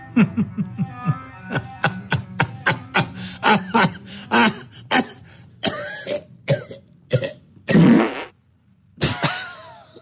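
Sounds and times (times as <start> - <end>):
person laughing in rapid rhythmic bursts: 0.0 - 5.4, 9.0 - 10.0
harsh coughs: 1.5 - 8.1, 9.0 - 10.0.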